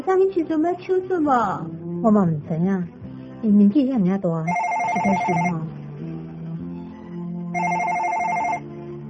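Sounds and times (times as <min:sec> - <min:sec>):
speech: 0:00.0 - 0:05.8
telephone ringing with electronic trill: 0:04.5 - 0:05.6, 0:07.6 - 0:08.7.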